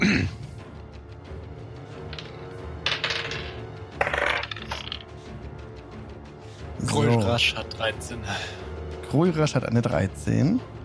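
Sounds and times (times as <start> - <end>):
dice clattering across a table in a tabletop role-playing game: 2.0 - 5.1
speech: 7.0 - 10.8.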